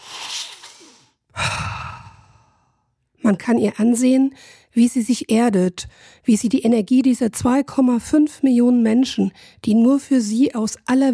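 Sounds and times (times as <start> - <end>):
fuller louder exhale like a sigh: 0.0 - 2.8
deep breath drawn in through the mouth: 0.0 - 2.9
speech: 3.3 - 11.1.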